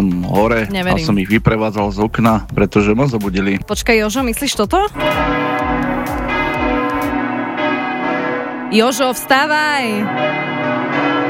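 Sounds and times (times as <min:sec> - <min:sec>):
speech: 0:00.0 - 0:05.7, 0:08.7 - 0:10.5
church bells ringing in a peal: 0:05.0 - 0:11.2.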